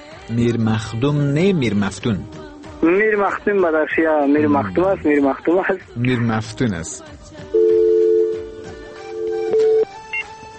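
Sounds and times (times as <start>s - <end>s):
speech: 0.3s - 7.6s
telephone dial or disconnect tone after a call is cut off: 7.6s - 10.4s.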